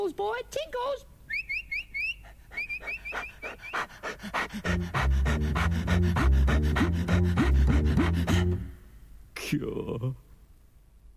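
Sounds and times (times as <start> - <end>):
speech: 0.0 - 1.1, 9.5 - 10.2
high chirping squeaks: 1.3 - 3.9
Great Dane puppy panting: 2.1 - 8.6.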